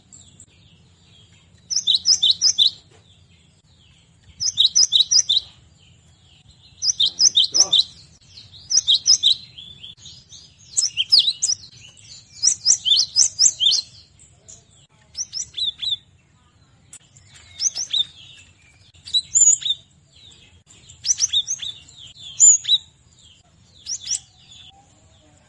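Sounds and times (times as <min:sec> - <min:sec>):
cinereous tit twittering song: 0:01.6 - 0:02.8, 0:04.3 - 0:05.5, 0:06.7 - 0:14.1, 0:15.1 - 0:16.1, 0:16.9 - 0:20.0, 0:20.9 - 0:23.0, 0:23.8 - 0:24.7.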